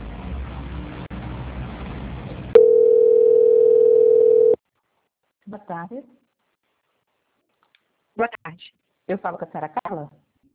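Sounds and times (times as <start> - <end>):
telephone tone during a call transfer: 2.6 - 4.6
speech: 5.7 - 6.2, 8.2 - 10.2.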